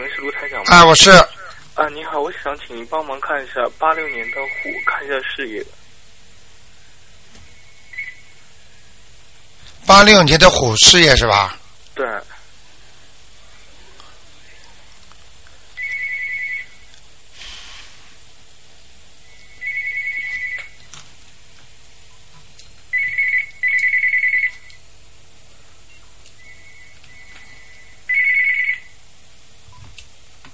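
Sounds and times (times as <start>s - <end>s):
telephone ringing with electronic trilling bursts: 0.0s - 1.2s, 3.8s - 5.2s, 15.8s - 16.8s, 19.4s - 20.9s, 22.9s - 24.8s, 26.4s - 29.0s
low steady hum: 0.0s - 30.5s
speech: 0.2s - 5.8s, 9.9s - 12.3s.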